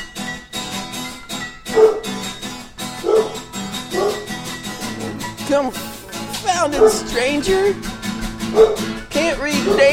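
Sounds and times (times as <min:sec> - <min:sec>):
steady rhythmic musical backing: 0:00.6 - 0:09.9
dog barking: 0:01.7 - 0:02.3, 0:03.0 - 0:05.4, 0:06.6 - 0:07.3, 0:08.4 - 0:09.0, 0:09.6 - 0:09.9
speech: 0:05.6 - 0:05.9, 0:06.6 - 0:09.9.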